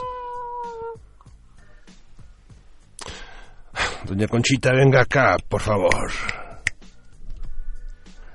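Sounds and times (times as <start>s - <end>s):
cat yowling meow: 0.0s - 1.0s
speech: 4.0s - 6.4s.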